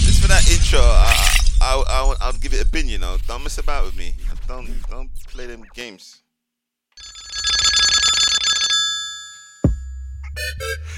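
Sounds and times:
speech: 0.4 - 6.2, 10.4 - 10.9
telephone bell ringing: 7.0 - 10.0.

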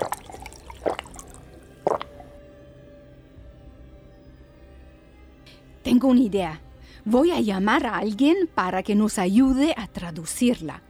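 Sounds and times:
wet slurping sips of water: 0.0 - 2.4
speech: 5.9 - 10.8.

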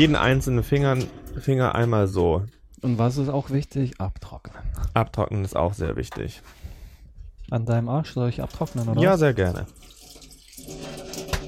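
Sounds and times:
speech: 0.0 - 6.6, 7.5 - 9.9
water running from a tap: 8.4 - 11.4.

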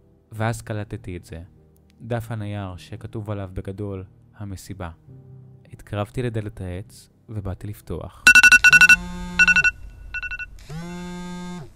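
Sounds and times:
speech: 0.3 - 9.2
mobile phone alarm reminder electronic melody: 8.3 - 10.5.

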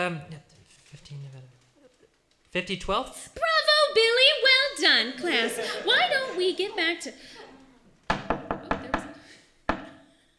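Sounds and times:
speech: 0.0 - 0.4, 1.0 - 1.6, 2.5 - 7.4
laughter: 4.5 - 8.0
firm knocks on a door: 8.1 - 10.1.

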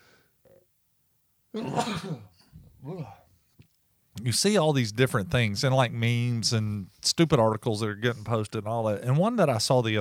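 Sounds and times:
speech: 1.5 - 3.2, 4.2 - 9.9
person sneezing: 1.6 - 3.2.

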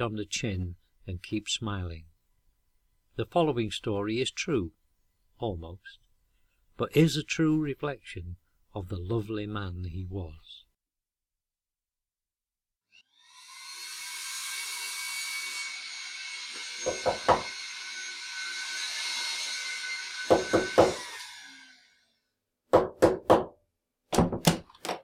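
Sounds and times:
speech: 0.0 - 2.1, 3.2 - 4.8, 5.4 - 6.0, 6.8 - 10.5, 16.8 - 17.6
sharp knocking on a door: 16.9 - 17.5, 20.3 - 21.0, 22.7 - 24.7.

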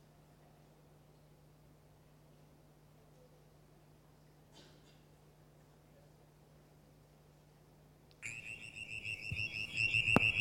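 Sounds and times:
faint low noise: 0.0 - 10.3
brown tree frog trilling call played from a recording on a phone: 8.2 - 10.3.

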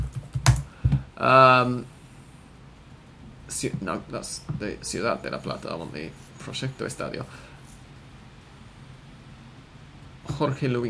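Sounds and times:
typing on a computer keyboard while searching online: 0.0 - 0.7
speech: 1.2 - 2.0, 3.6 - 7.5, 10.3 - 10.8.

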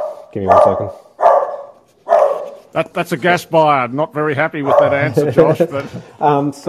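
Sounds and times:
loud dog barks: 0.0 - 2.7, 4.6 - 5.2
speech: 0.4 - 1.1, 2.7 - 6.6
laughter: 4.6 - 6.3.

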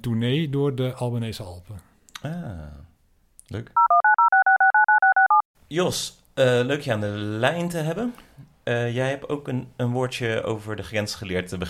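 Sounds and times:
speech: 0.0 - 2.9, 3.5 - 4.0, 5.7 - 11.6
telephone dialing beeps: 3.8 - 5.4.

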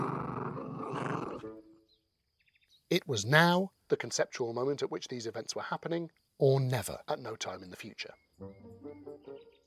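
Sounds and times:
deep rough growl of an imposing dog: 0.0 - 1.5
speech: 2.9 - 9.1.

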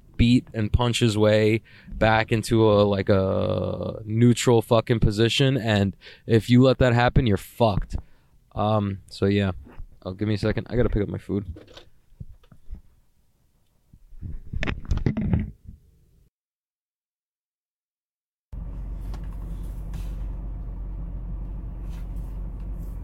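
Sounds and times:
speech: 0.2 - 11.9
old car engine idling with heater blasting in cold weather: 18.6 - 23.0.

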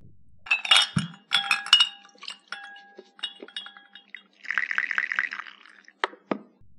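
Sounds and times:
cup and pot clinking: 0.5 - 6.5
coffee pouring into a cup: 3.2 - 6.2.

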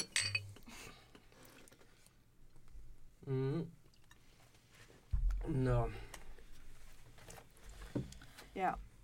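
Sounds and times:
glasses clinking in a toast: 0.0 - 0.6
speech: 3.2 - 3.8, 5.5 - 6.1, 8.6 - 8.9.

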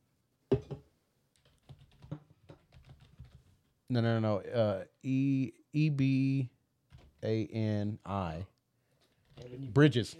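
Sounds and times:
fingers typing on a computer keyboard: 1.3 - 3.5, 6.9 - 7.2, 9.1 - 9.5
speech: 3.9 - 6.6, 7.2 - 8.5, 9.4 - 10.1.

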